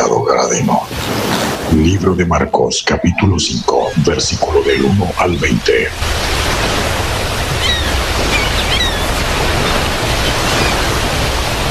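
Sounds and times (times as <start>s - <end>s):
sea waves surging: 0.0s - 11.6s
wind: 0.0s - 11.6s
speech: 1.8s - 6.8s
faint high bird-like chirps: 7.6s - 9.1s.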